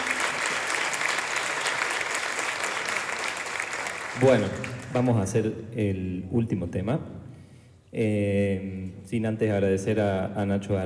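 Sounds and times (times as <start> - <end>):
audience applause at a jazz festival concert: 0.0 - 5.2
speech: 4.2 - 7.2, 7.9 - 10.8.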